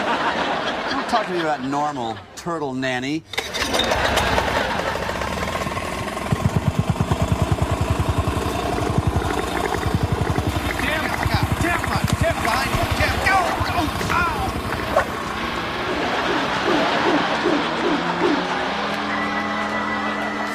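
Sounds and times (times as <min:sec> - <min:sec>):
laughter: 0:00.0 - 0:02.5, 0:03.6 - 0:05.7, 0:10.8 - 0:20.5
speech: 0:01.1 - 0:04.4
power compactor engine running: 0:03.3 - 0:19.6.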